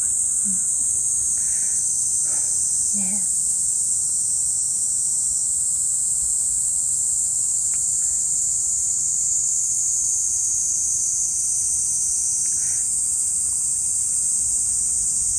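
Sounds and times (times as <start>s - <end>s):
person murmuring: 0.0s - 0.8s, 2.3s - 3.3s
cicadas buzzing: 0.0s - 15.3s.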